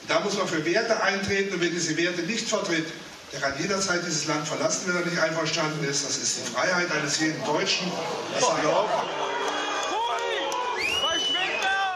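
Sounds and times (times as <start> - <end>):
speech: 0.1 - 9.3
audience jeering and shouting at public meeting: 8.0 - 11.9
audience shrill whistles at public meeting: 9.1 - 11.9.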